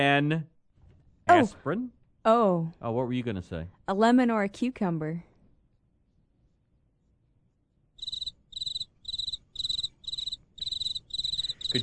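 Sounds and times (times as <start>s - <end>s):
speech: 0.0s - 0.5s, 1.3s - 5.3s
crickets chirping in shrill trilling bursts: 8.0s - 11.8s.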